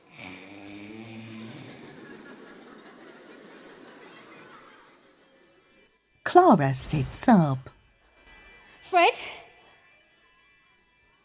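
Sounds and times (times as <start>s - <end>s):
sleeping father snoring gently: 0.0s - 2.3s
laughter: 1.7s - 5.2s
speech: 6.3s - 7.8s.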